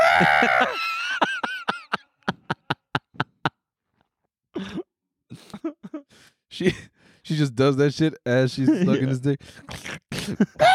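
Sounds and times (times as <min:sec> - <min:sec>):
person imitating a goat scream: 0:00.0 - 0:00.8, 0:10.6 - 0:10.7
speech: 0:00.2 - 0:01.0, 0:06.6 - 0:10.7
laughter: 0:00.4 - 0:03.6.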